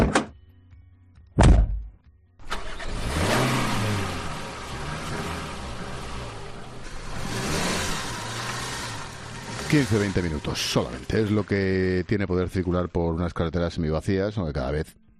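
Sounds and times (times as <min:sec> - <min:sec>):
sharp thuds: 0:01.4 - 0:02.0
van engine starting and accelerating as it drives off: 0:02.4 - 0:12.8
speech: 0:09.7 - 0:15.0.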